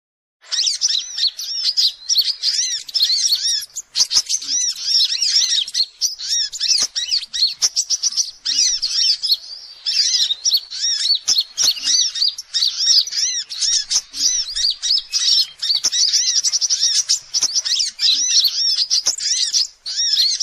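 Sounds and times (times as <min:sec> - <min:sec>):
spiderhunter song of high chirps: 0:00.4 - 0:20.4
sharp clicks: 0:06.6 - 0:08.3, 0:13.7 - 0:19.6.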